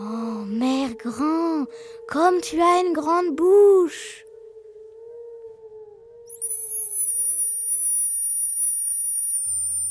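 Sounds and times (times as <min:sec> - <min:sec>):
speech: 0:00.6 - 0:04.2
lower whistle: 0:04.3 - 0:09.9
teapot whistling: 0:06.3 - 0:09.9.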